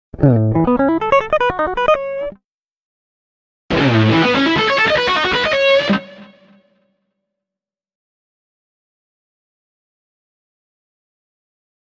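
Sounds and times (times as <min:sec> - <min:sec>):
electric guitar arpeggio lead: 0:00.2 - 0:02.4, 0:03.7 - 0:06.8.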